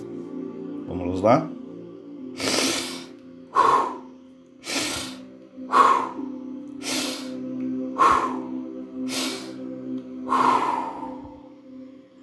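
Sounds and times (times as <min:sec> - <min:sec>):
speech: 0:00.9 - 0:01.6
loud rapid breaths: 0:02.4 - 0:07.4, 0:08.0 - 0:11.5.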